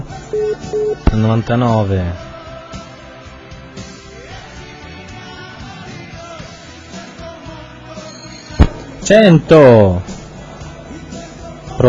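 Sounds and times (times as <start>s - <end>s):
electronic ringback tones of an outgoing phone call: 0.2s - 1.1s
speech: 0.3s - 2.3s, 9.1s - 10.1s.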